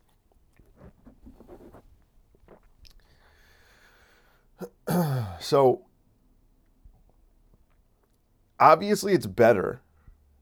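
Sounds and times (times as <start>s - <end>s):
faint rustle: 0.1s - 2.9s
wet mouth clicks and gulps: 0.5s - 3.2s
person sipping water: 0.7s - 3.5s
speech: 5.4s - 5.9s, 8.6s - 9.8s.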